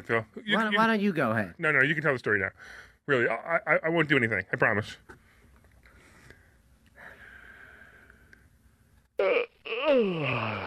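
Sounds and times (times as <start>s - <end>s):
speech: 0.0s - 5.2s, 9.2s - 10.6s
person attempting a yawn: 9.2s - 10.6s
strained wavering vocal groan sliding downward: 9.2s - 10.6s.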